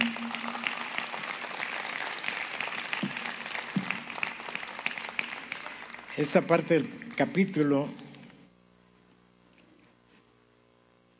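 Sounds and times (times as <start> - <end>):
faint sustained musical tones: 0.0 - 1.3
crowd applauding: 0.0 - 7.6
speech: 6.2 - 8.0.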